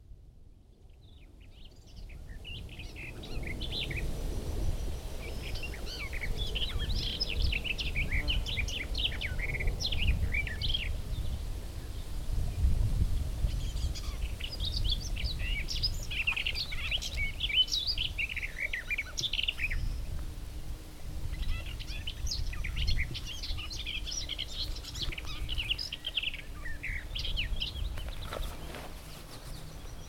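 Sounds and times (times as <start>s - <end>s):
garden warbler singing: 0.9s - 20.3s, 21.2s - 30.0s.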